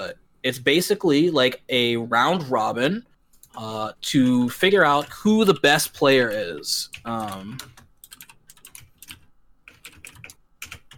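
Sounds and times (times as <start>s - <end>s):
speech: 0.0s - 7.8s
typing on a loud computer keyboard: 6.2s - 10.9s.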